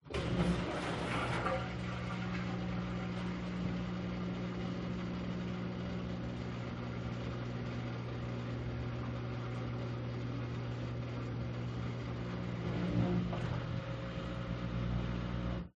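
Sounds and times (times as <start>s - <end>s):
washing machine drain valve and pump releasing water into drainage: 0.0s - 15.7s.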